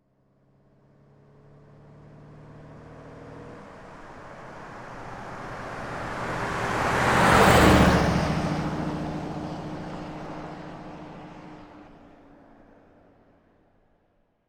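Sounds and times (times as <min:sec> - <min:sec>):
big vintage car passing by: 0:00.9 - 0:12.0.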